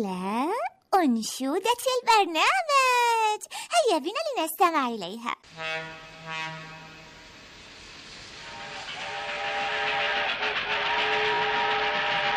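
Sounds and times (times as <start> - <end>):
speech: 0.0 - 6.7
fast train whistle blast: 5.5 - 12.3.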